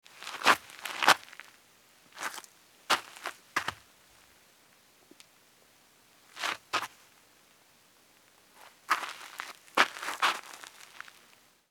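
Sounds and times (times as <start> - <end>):
sneaker footsteps scuffing on dirt: 0.2 - 1.4, 2.2 - 3.8, 6.4 - 7.0, 8.6 - 11.2.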